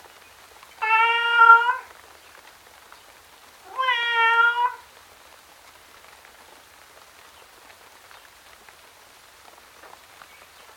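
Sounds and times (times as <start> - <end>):
tom cat meowing outdoors in the rain: 0.8 - 1.9, 3.7 - 4.9.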